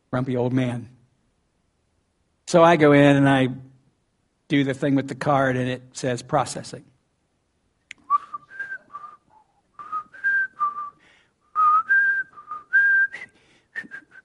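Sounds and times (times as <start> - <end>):
speech: 0.1 - 1.0, 2.5 - 3.7, 4.5 - 6.9
person whistling a melodic tune at a gas station pump: 8.0 - 14.2.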